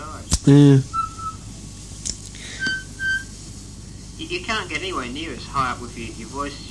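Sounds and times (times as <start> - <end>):
speech: 0.5 - 0.9, 4.6 - 6.6
person whistling high clear notes: 2.6 - 3.3.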